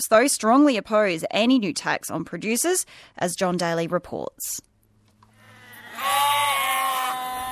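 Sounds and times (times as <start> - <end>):
speech: 0.0 - 4.7
sheep bleating: 5.5 - 7.5.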